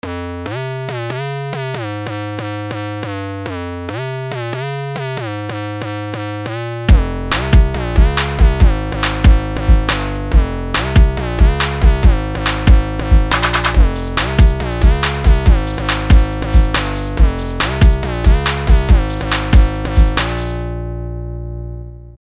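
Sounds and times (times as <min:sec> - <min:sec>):
hip hop music: 0:06.8 - 0:20.7.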